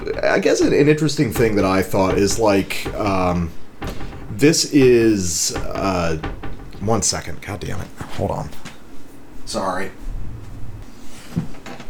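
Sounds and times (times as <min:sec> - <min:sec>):
cabinet door beneath a sink creaking open: 0:00.0 - 0:08.8
low rumbling: 0:00.0 - 0:08.8
short knock: 0:00.0 - 0:08.8
speech: 0:00.2 - 0:03.6, 0:04.4 - 0:08.7, 0:09.5 - 0:10.0.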